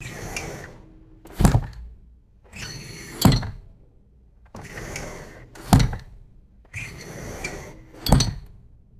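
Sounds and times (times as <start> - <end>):
refrigerator door opening and closing: 0.6 - 1.9, 2.8 - 3.7, 5.5 - 6.2, 8.0 - 8.6.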